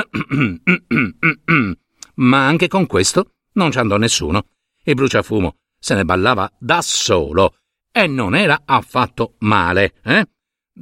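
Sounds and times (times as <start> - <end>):
voice imitating a small cough clearing the throat: 0.0 - 1.8
speech: 0.2 - 10.8.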